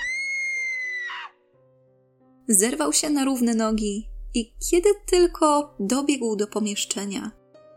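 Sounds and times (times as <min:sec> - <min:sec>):
woman screaming shrilly: 0:00.0 - 0:01.4
low steady music: 0:00.0 - 0:07.7
speech: 0:02.5 - 0:07.4.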